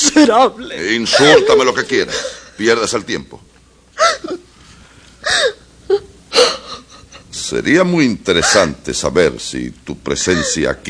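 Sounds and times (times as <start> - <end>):
speech: 0.2 - 3.5, 7.5 - 10.8
woman sobbing and wailing in a dramatic scene: 1.0 - 2.5, 4.0 - 4.5, 5.2 - 7.4, 10.2 - 10.7.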